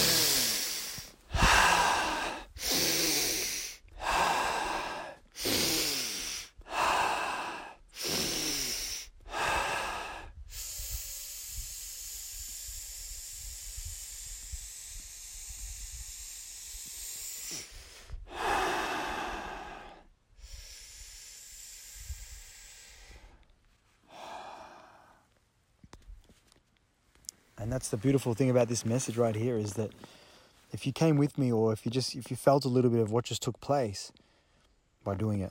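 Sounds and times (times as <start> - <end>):
deep breaths in through the nose and out through the mouth: 0.0 - 25.4, 29.9 - 30.7
speech: 27.7 - 34.2, 35.0 - 35.5.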